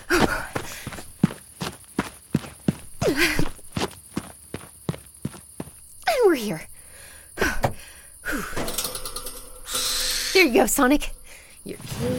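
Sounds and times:
footsteps running across sand: 0.0 - 5.8
speech: 3.1 - 3.5, 6.3 - 6.7, 10.4 - 12.1.

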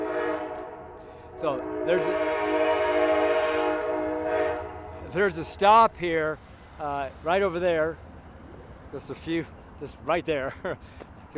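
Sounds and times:
Amtrak passenger train horn blaring: 0.0 - 5.9
rumbling rail noise of a passenger train: 0.0 - 11.3
speech: 1.4 - 3.0, 5.1 - 8.1, 8.9 - 11.3.

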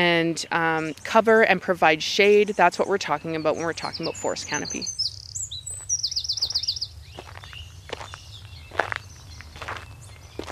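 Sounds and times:
speech: 0.0 - 5.0
bird trilling and chirping: 0.7 - 10.5
footsteps crunching along a forest path: 5.6 - 10.5.

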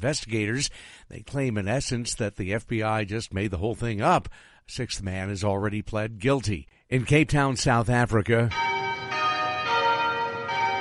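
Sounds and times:
speech: 0.0 - 8.7
cathedral church bells ringing: 8.5 - 10.8.

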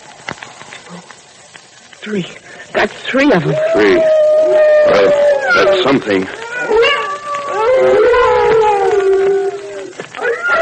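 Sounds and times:
speech: 2.0 - 6.4
timber wolves howling in chorus: 3.4 - 10.5.

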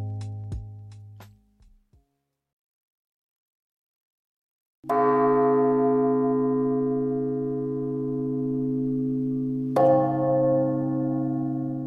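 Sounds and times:
large church bells ringing: 4.9 - 11.8.

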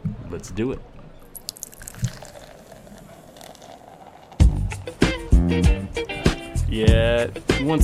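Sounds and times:
speech: 0.3 - 1.0, 6.7 - 7.8
oatmeal stout beer gurgling and glugging from a bottle: 1.4 - 4.9.

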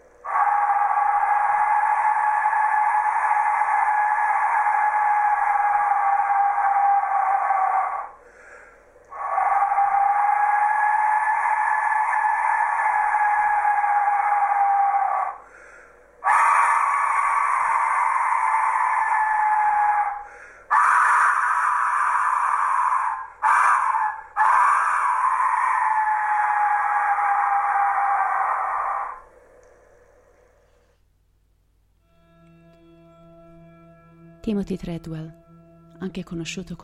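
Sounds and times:
eerie scream-like wails from skull-shaped whistles: 0.2 - 30.8
speech: 34.5 - 35.4, 36.0 - 36.8.

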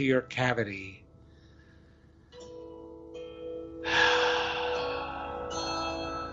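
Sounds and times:
soft steady tone: 0.0 - 6.3
deep breath in during a guided relaxation exercise: 1.2 - 2.2, 3.8 - 6.3.

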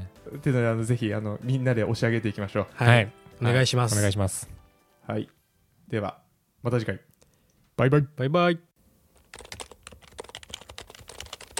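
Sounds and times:
speech: 0.2 - 7.1, 7.8 - 8.7
typing on a Happy Hacking Keyboard computer keyboard: 9.2 - 11.5.

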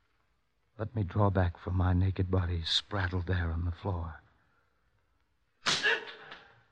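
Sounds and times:
speech: 0.8 - 4.2
whip lash cracking during a beating: 5.6 - 6.0.

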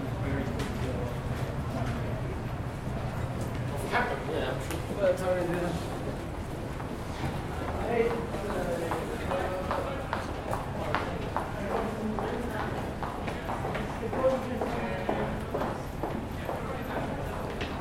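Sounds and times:
low hum of air conditioning: 0.0 - 17.7
snatches of passing conversation: 0.2 - 17.6
footsteps echoing through a stone archway: 4.6 - 17.7.

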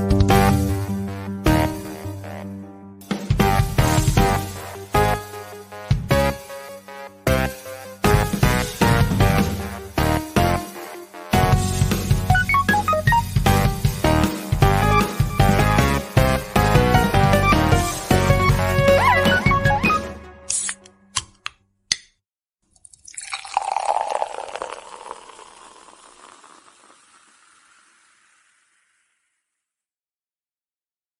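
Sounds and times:
upbeat instrumental podcast theme song: 0.0 - 21.1.

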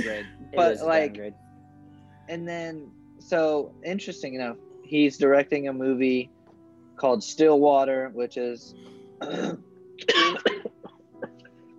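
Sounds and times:
person clearing throat: 0.0 - 0.3, 9.2 - 11.5
person coughing: 0.0 - 0.3, 9.2 - 11.5
speech: 0.0 - 1.4, 2.3 - 6.4, 7.0 - 10.8.

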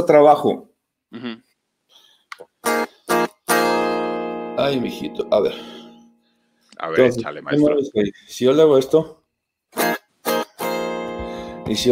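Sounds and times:
speech: 0.0 - 1.5, 4.6 - 5.8, 6.8 - 10.0, 11.7 - 11.9
person vocal sound: 1.1 - 1.4
unamplified electric guitar plucks: 2.6 - 6.1, 9.8 - 11.9.

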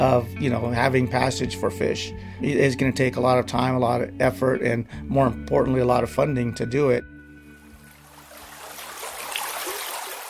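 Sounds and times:
speech: 0.0 - 7.1
mountain creek flowing: 7.6 - 10.2
water splashing and gurgling in a mountain creek: 7.6 - 10.2.

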